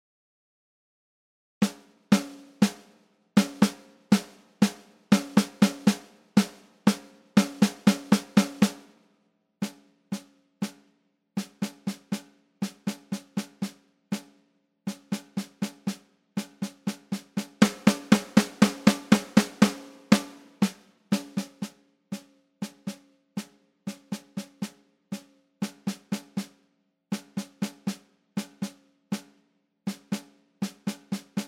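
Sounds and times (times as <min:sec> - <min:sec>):
snare drum: 0:01.6 - 0:09.0, 0:09.6 - 0:31.4.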